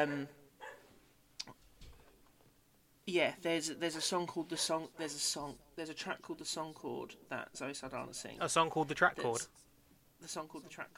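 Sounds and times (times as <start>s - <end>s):
speech: 0.0s - 0.4s, 3.1s - 9.6s, 10.2s - 10.9s
dog barking somewhere in a home: 0.6s - 0.9s.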